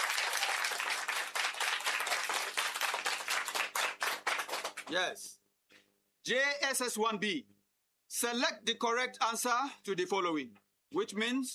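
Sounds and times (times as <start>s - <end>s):
group applauding after a correct quiz answer: 0.0s - 5.1s
speech: 4.9s - 5.4s, 6.3s - 7.5s, 8.1s - 11.5s.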